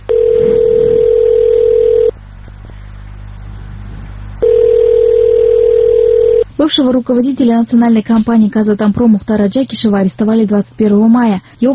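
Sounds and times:
ringback tone on an unanswered phone call to a press office: 0.1 - 2.2, 4.4 - 6.4
speech: 6.6 - 11.7.

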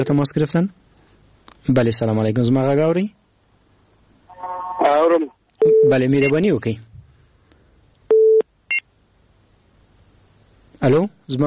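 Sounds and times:
speech: 0.0 - 0.9, 1.6 - 3.2, 4.9 - 6.9, 10.8 - 11.4
telephone busy tone after call disconnects: 5.6 - 6.3, 8.1 - 8.4.

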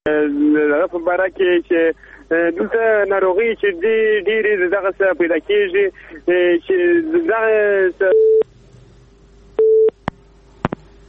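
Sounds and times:
speech: 1.0 - 8.3
telephone busy signal after a call disconnects: 8.1 - 8.4, 9.6 - 10.0.

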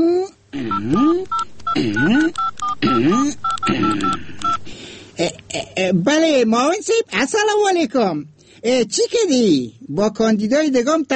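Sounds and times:
telephone keypad tones as a number is dialed: 0.6 - 4.7
speech: 5.8 - 11.1.

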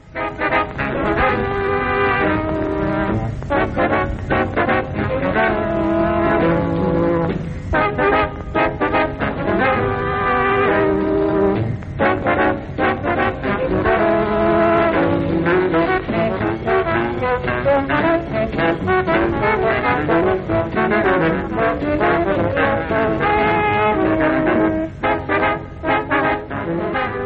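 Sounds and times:
brassy horn lines: 0.0 - 27.2
old recording of a 1950s jazz tune: 0.0 - 27.2.

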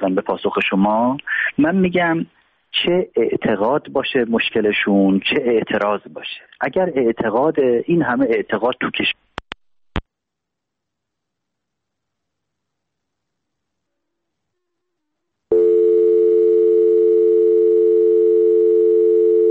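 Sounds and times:
speech: 0.0 - 9.3
phone dial tone after a dropped call: 15.5 - 19.4.

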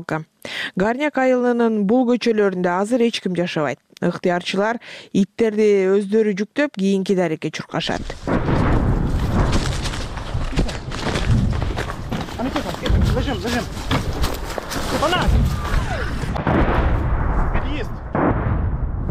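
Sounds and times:
speech: 0.0 - 8.7, 13.2 - 13.8
artillery shelling in an abandoned village during a war: 8.2 - 12.1, 12.7 - 19.0.

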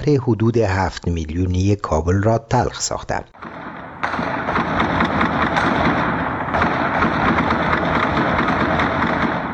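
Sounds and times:
speech: 0.0 - 3.6
heavy sustained gunfire in a city street: 3.4 - 9.5.

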